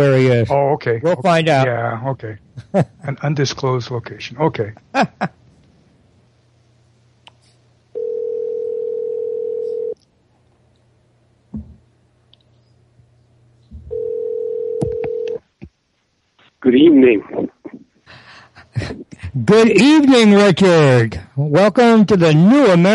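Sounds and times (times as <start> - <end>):
speech: 0.0 - 5.4, 16.6 - 17.5, 18.8 - 22.9
faint hum: 0.0 - 22.9
telephone line tones: 8.0 - 10.0, 13.9 - 15.4.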